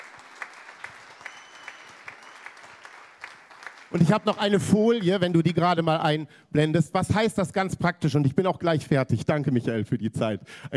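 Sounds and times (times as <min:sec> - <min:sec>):
crowd applauding at a church gathering: 0:00.0 - 0:05.2
speech: 0:03.9 - 0:10.7.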